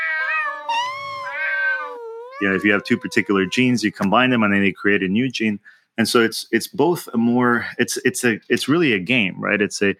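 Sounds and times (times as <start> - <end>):
cat meowing: 0.0 - 4.0
speech: 2.4 - 9.9.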